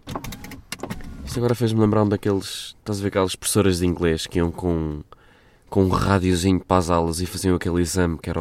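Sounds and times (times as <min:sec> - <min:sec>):
car automatic power window whirring as it opens and closes: 0:00.1 - 0:01.3
speech: 0:01.3 - 0:05.1, 0:05.7 - 0:08.3.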